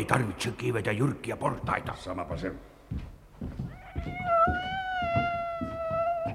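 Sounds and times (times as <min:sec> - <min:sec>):
speech: 0:00.0 - 0:04.7
tomcat yowling: 0:03.7 - 0:06.3.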